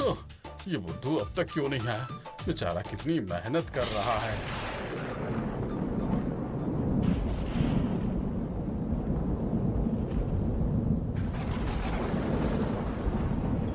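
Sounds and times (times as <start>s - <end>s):
speech: 0.1s - 4.7s
rain noise: 2.5s - 13.7s
thunder rumbling in a thunderstorm: 3.7s - 13.7s.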